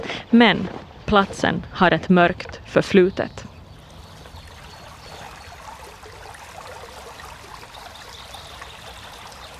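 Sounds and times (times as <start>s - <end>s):
speech: 0.1s - 3.5s
brook water burbling and trickling: 3.5s - 9.5s.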